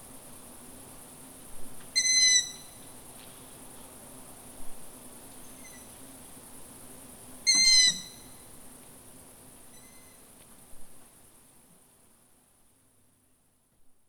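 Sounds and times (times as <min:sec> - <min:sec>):
long-eared owl squeaky calls: 0:02.0 - 0:02.6, 0:07.5 - 0:08.3.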